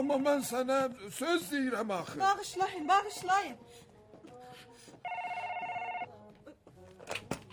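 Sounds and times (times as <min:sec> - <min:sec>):
speech: 0:00.0 - 0:03.9
telephone ringing: 0:05.0 - 0:06.1.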